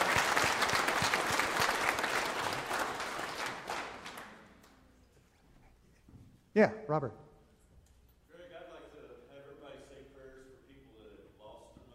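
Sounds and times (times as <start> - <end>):
group applauding: 0.0 - 4.8
speech: 6.6 - 7.3.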